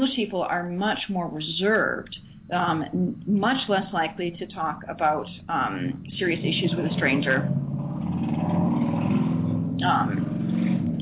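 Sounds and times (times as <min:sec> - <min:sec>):
speech: 0:00.2 - 0:07.6, 0:09.8 - 0:10.3
car engine rumbling past on a street: 0:06.0 - 0:10.9.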